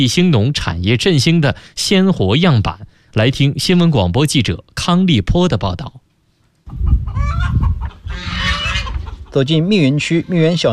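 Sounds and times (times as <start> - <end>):
speech: 0.0 - 6.0, 9.3 - 10.7
chickens clucking and crowing on a cooperative farm: 6.6 - 10.6
geese honking on a cooperative farm: 7.2 - 9.5.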